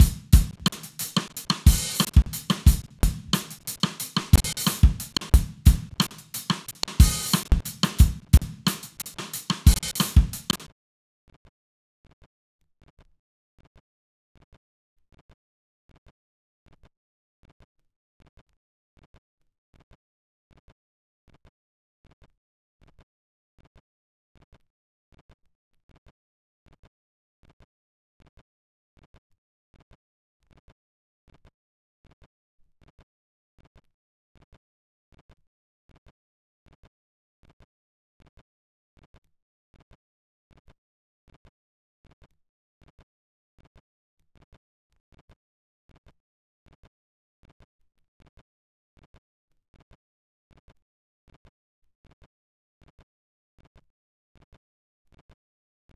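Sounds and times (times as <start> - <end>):
drum loop groove: 0.0 - 10.7.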